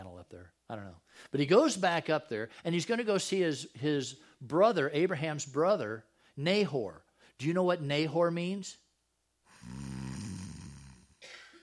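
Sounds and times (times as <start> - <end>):
speech: 0.7 - 8.8
person imitating a snore: 9.5 - 11.2.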